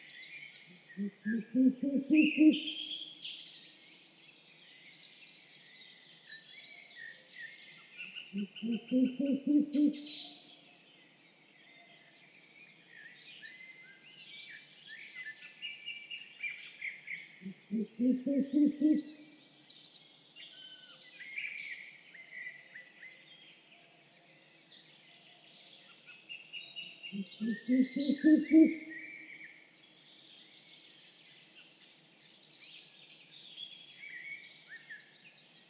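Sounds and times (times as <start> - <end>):
Ural owl Strix uralensis calling at night: 1.0 - 2.8, 8.4 - 10.1, 17.5 - 19.3, 27.2 - 29.0.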